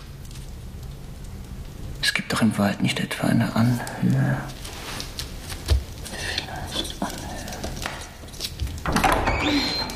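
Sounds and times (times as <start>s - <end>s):
speech: 2.2s - 4.6s
door opening: 8.8s - 9.9s.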